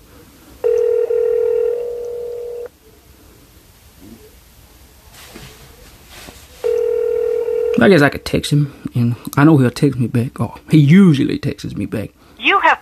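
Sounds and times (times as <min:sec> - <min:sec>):
telephone ringing while calling someone: 0:00.6 - 0:02.7, 0:06.6 - 0:08.3
speech: 0:07.8 - 0:12.8.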